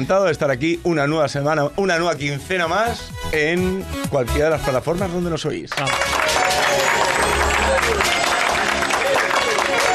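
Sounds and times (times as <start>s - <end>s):
speech: 0.0s - 6.6s
one person briskly clapping hands: 5.7s - 9.9s.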